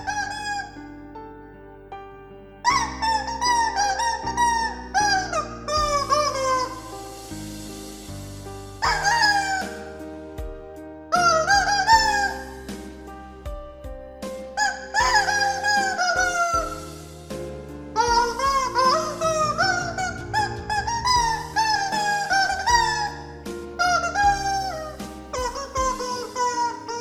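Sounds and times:
rubber chicken squeaks honking out a melody: 0:00.0 - 0:00.8, 0:02.6 - 0:07.0, 0:08.8 - 0:10.0, 0:11.2 - 0:13.0, 0:14.6 - 0:17.0, 0:18.0 - 0:26.9
backing track music: 0:00.0 - 0:26.9.

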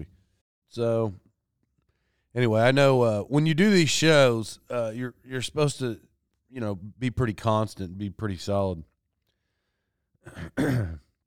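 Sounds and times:
speech: 0:00.0 - 0:01.2, 0:02.3 - 0:08.9, 0:10.2 - 0:11.0
voiced throat clearing: 0:10.2 - 0:11.2.

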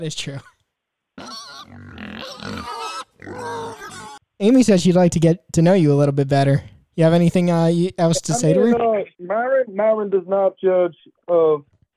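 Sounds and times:
speech: 0:00.0 - 0:00.5, 0:04.4 - 0:11.7
pig grunting, oinking, squealing and snorting: 0:01.2 - 0:04.2.

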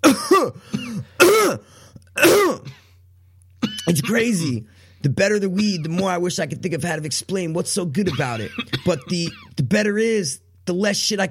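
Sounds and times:
person coughing hard: 0:00.0 - 0:03.0, 0:03.6 - 0:04.5, 0:08.0 - 0:09.6
person gasping: 0:00.5 - 0:02.1
speech: 0:03.9 - 0:11.2.

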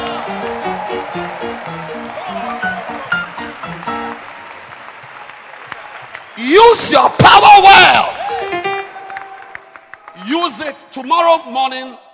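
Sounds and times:
musical tones: 0:00.0 - 0:04.3
large crowd clapping: 0:00.0 - 0:07.6, 0:08.2 - 0:10.7
speech: 0:06.4 - 0:08.2, 0:10.2 - 0:12.0.

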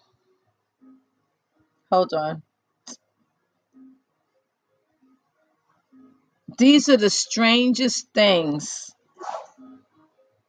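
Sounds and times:
speech: 0:01.9 - 0:03.0, 0:06.6 - 0:09.4
person sneezing: 0:09.2 - 0:09.6.

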